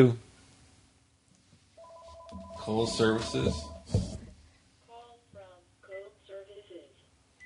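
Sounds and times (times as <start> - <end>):
speech: 0.0 - 0.2, 2.7 - 4.1
telephone ringing with electronic two-tone burst: 1.8 - 3.9.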